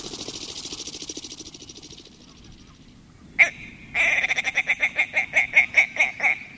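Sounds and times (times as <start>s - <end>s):
male tundra bird chuckling in flight over the tundra: 3.4s - 6.4s.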